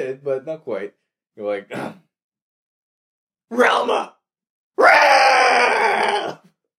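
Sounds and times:
speech: 0:00.1 - 0:02.0, 0:03.5 - 0:04.2
person imitating a cartoon dog's howl: 0:04.8 - 0:06.5.

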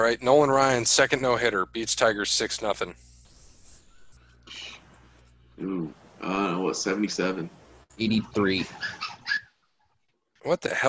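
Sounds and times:
speech: 0:00.0 - 0:03.1, 0:05.6 - 0:09.1, 0:10.4 - 0:10.8
puppies whimpering in the next room: 0:08.2 - 0:09.6.

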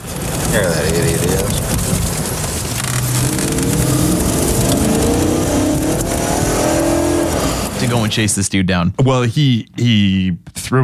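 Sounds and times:
car engine revving and accelerating: 0:00.0 - 0:08.4
speech: 0:00.6 - 0:01.7, 0:08.1 - 0:10.8.

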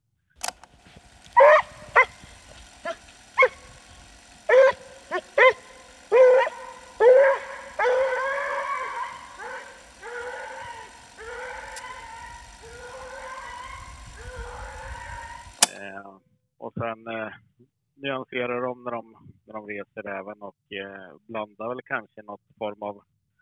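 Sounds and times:
Treeing Walker Coonhound baying on fox scent: 0:01.2 - 0:15.6
speech: 0:16.8 - 0:17.4, 0:18.0 - 0:23.2.

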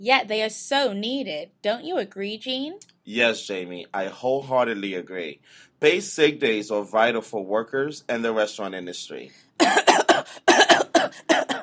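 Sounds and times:
speech: 0:00.0 - 0:10.4
person coughing harshly: 0:09.6 - 0:11.6.

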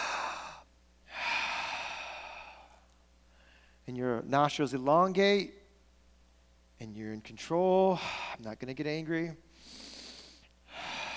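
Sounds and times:
person taking a deep breath: 0:00.0 - 0:03.8, 0:07.9 - 0:08.4, 0:09.5 - 0:11.1
speech: 0:03.9 - 0:05.6, 0:06.8 - 0:09.8.

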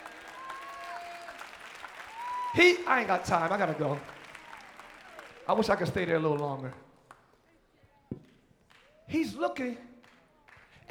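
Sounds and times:
high whoops: 0:00.0 - 0:05.5
crowd cheering: 0:00.0 - 0:06.8
crowd clapping: 0:00.0 - 0:07.4, 0:08.6 - 0:09.1, 0:10.0 - 0:10.8
speech: 0:02.5 - 0:04.2, 0:05.5 - 0:06.8, 0:09.1 - 0:09.9.

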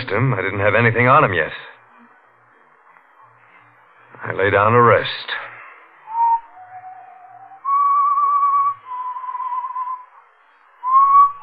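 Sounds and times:
speech: 0:00.1 - 0:01.7, 0:04.2 - 0:05.5
person whistling a slow tune: 0:06.1 - 0:10.2, 0:10.8 - 0:11.4.

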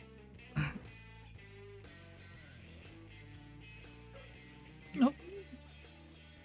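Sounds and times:
person coughing: 0:00.6 - 0:00.9
throat-clearing cough: 0:00.6 - 0:01.0.

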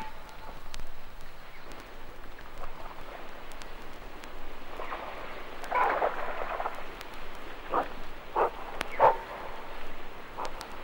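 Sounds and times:
steady wet outdoor background: 0:00.0 - 0:10.8
bushbuck running through water: 0:02.5 - 0:10.8.

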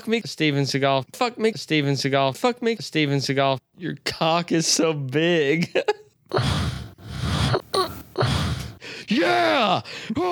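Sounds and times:
speech: 0:00.0 - 0:06.8, 0:09.1 - 0:10.3
short wavering moan: 0:06.3 - 0:08.8
loud raspy breathing: 0:06.3 - 0:09.1, 0:09.8 - 0:10.2.

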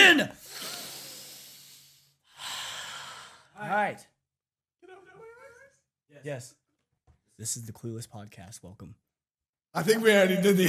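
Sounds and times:
group taking deep breaths, inhaling and exhaling: 0:00.4 - 0:03.6
speech: 0:03.8 - 0:04.2, 0:06.1 - 0:06.6, 0:07.4 - 0:09.1, 0:09.7 - 0:10.6.

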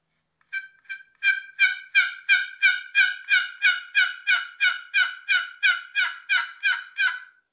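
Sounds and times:
turkey box call imitating a hen's lost yelps: 0:00.5 - 0:07.4.

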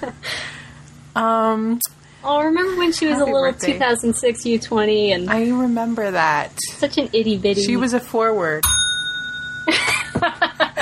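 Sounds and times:
speech: 0:01.2 - 0:08.8
bell ringing: 0:08.6 - 0:10.5.

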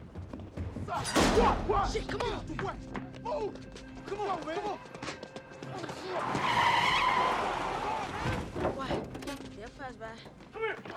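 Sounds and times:
speech: 0:00.9 - 0:07.5, 0:09.6 - 0:10.9
getaway car tires skidding: 0:05.7 - 0:08.6.

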